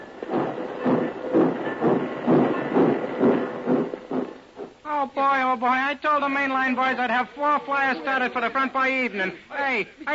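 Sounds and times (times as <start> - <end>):
small steam locomotive hissing and chuffing in a congested railroad yard: 0.0 - 4.5
speech: 5.0 - 10.1.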